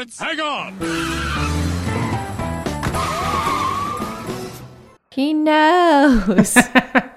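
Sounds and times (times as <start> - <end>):
speech: 0.0 - 1.6, 5.2 - 7.0
car engine revving hard: 0.2 - 4.9
tire squeal as a car peels out: 0.6 - 4.6
laughter: 6.1 - 7.1.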